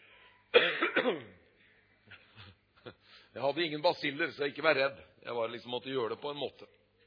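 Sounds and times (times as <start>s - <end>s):
speaker coughing at a microphone during a talk: 0.5s - 1.5s
speech: 1.0s - 1.4s, 3.4s - 6.8s.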